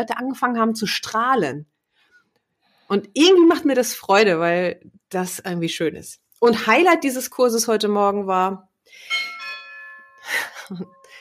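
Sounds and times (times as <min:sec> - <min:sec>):
speech: 0:00.0 - 0:01.7, 0:02.9 - 0:09.2, 0:10.3 - 0:11.0
doorbell chime: 0:09.0 - 0:11.1
laughter: 0:10.3 - 0:10.9.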